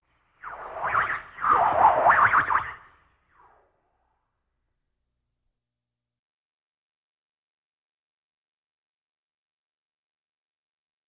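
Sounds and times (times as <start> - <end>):
swirl: 0.4 - 3.7.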